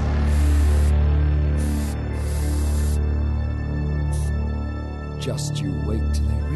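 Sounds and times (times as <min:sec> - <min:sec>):
aerosol spray paint can hissing: 0:00.0 - 0:03.0, 0:04.0 - 0:04.4
speech: 0:05.2 - 0:06.5.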